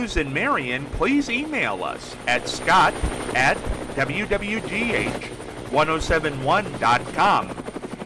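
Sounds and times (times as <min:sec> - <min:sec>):
speech: 0:00.0 - 0:07.6
news helicopter rotors chopping overhead: 0:00.0 - 0:08.0.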